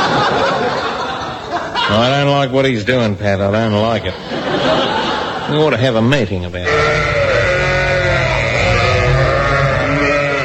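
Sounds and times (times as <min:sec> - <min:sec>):
laughter: 0:00.0 - 0:02.4, 0:03.9 - 0:06.0
speech: 0:01.9 - 0:07.2
sheep bleating in a stock recording: 0:06.6 - 0:10.4.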